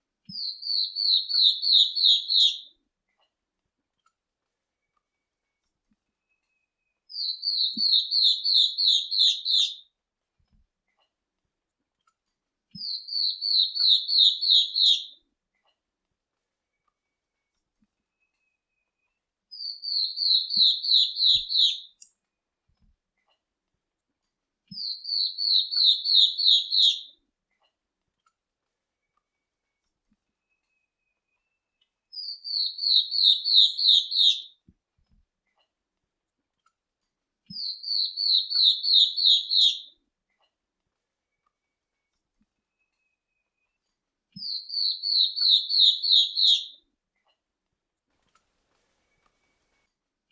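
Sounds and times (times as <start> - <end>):
star-throated antwren singing: 0.3 - 2.6, 7.1 - 9.8, 12.8 - 15.2, 19.5 - 22.0, 24.7 - 27.1, 32.1 - 34.5, 37.5 - 39.9, 44.4 - 46.8.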